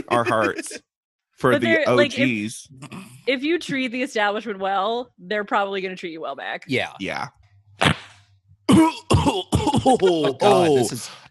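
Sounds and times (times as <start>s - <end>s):
coughing fit: 0.0s - 0.8s, 8.7s - 11.1s
laughter: 0.0s - 0.8s, 1.5s - 2.6s, 9.6s - 11.2s
throat clearing: 0.0s - 0.8s, 8.7s - 11.1s
speech: 0.1s - 8.0s, 8.8s - 11.2s.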